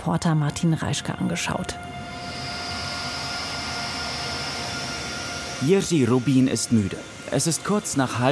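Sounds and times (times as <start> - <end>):
speech: 0.0 - 2.0, 5.6 - 8.3
faint tonal hum: 0.0 - 8.3
freight train running at night: 0.8 - 8.3.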